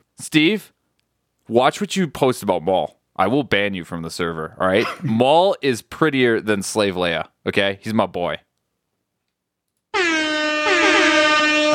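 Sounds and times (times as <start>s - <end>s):
speech: 0.2s - 0.8s, 1.5s - 8.4s
loud brassy air horn sound effect: 10.0s - 11.7s.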